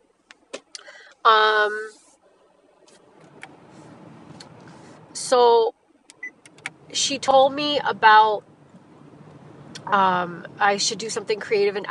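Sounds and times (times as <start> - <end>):
street traffic rumble: 0.0 - 11.8
speech: 1.2 - 2.0, 5.2 - 5.8, 6.9 - 8.5, 9.9 - 11.8
sharp clicks: 6.1 - 6.8.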